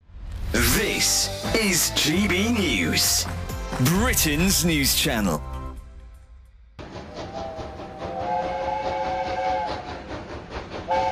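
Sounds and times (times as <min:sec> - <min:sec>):
speech: 0:00.5 - 0:05.5
passing steam train hiss and rumble on the North Yorkshire Moors Railway: 0:06.8 - 0:11.1
steam locomotive whistle: 0:07.0 - 0:10.2, 0:10.8 - 0:11.1.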